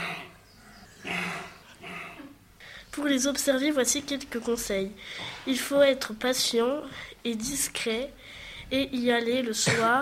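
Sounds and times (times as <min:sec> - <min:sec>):
roe deer hoarse bark-like call: 0:00.0 - 0:02.3
speech: 0:03.0 - 0:10.0.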